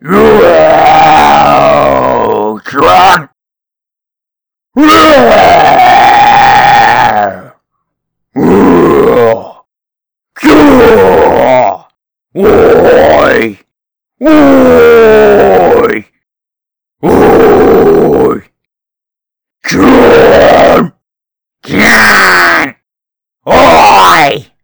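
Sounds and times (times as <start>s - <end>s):
bugbear roaring: 0.0s - 3.3s, 4.8s - 7.6s, 8.4s - 9.6s, 10.5s - 11.8s, 12.4s - 13.4s, 14.3s - 15.9s, 17.0s - 18.4s, 19.7s - 20.9s, 21.7s - 22.7s, 23.5s - 24.5s.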